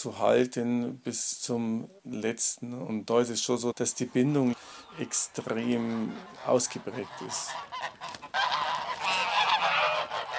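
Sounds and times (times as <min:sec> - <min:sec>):
speech: 0:00.0 - 0:08.2
geese honking: 0:03.9 - 0:10.3.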